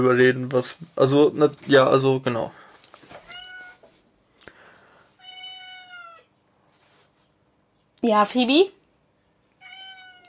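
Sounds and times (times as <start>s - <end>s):
speech: 0.0s - 2.6s, 8.0s - 8.8s
Sphynx cat meowing: 3.2s - 3.9s, 5.2s - 6.3s, 9.6s - 10.2s.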